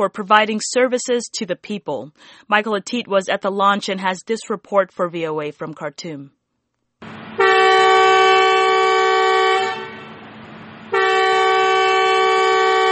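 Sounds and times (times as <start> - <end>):
speech: 0.0 - 6.4
moving metro train rumbling: 7.0 - 12.8
new metro train horn blasts: 7.4 - 10.2, 10.9 - 12.8.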